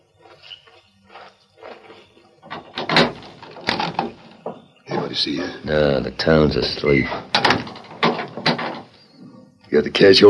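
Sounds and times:
town jail door rattling: 0:02.4 - 0:09.2
speech: 0:05.1 - 0:07.8, 0:09.8 - 0:10.2.

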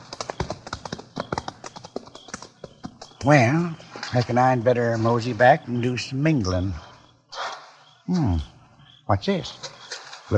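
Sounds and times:
walking horse hooves clip-clopping: 0:00.0 - 0:04.4
speech: 0:03.2 - 0:06.8, 0:08.1 - 0:08.5, 0:09.1 - 0:09.7.

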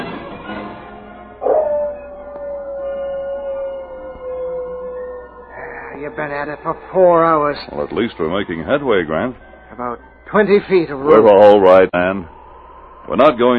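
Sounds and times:
dog howling in long wavering cries: 0:01.4 - 0:07.6
speech: 0:06.4 - 0:12.4, 0:13.1 - 0:13.5.

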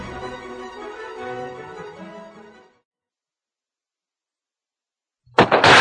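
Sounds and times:
burst of noise: 0:05.3 - 0:05.8
gunfire echoing: 0:05.4 - 0:05.8.

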